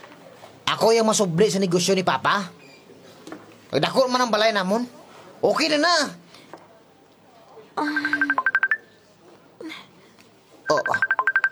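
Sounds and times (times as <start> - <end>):
speech: 0.7 - 2.6, 3.7 - 6.2, 7.8 - 8.4, 10.7 - 11.1
cellphone ringing with bright electronic tone and pulsing beeps: 7.8 - 8.9, 10.7 - 11.5.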